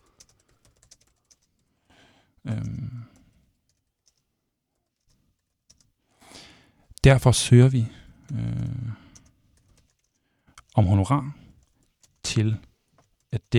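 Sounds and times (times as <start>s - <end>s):
typing on a computer keyboard: 0.0s - 1.8s, 2.6s - 6.0s, 9.0s - 10.8s, 11.5s - 13.5s
speech: 2.5s - 3.2s, 7.0s - 8.5s, 10.8s - 11.4s, 12.4s - 12.7s, 13.3s - 13.5s.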